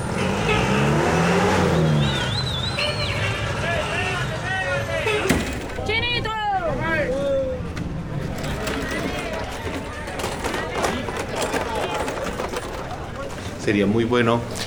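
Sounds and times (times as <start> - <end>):
heavy city traffic at rush hour: 0.0 - 14.6
short whistling or horn-like tones: 1.8 - 3.4
speech: 13.7 - 14.6.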